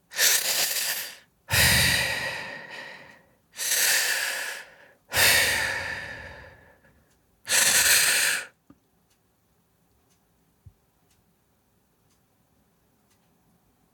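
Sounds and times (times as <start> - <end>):
person breathing slowly with long hoarse breaths: 0.1 - 8.6.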